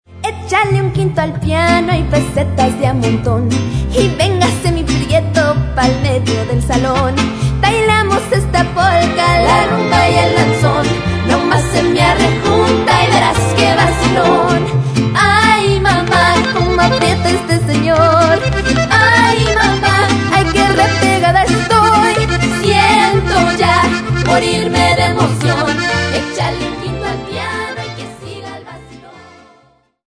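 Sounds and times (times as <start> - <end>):
mariachi music: 0.1 - 30.0
piano: 7.6 - 29.3.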